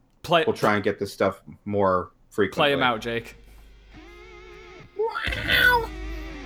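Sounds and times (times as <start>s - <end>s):
speech: 0.3s - 3.4s
man yowling imitating a cat in heat: 5.0s - 6.0s.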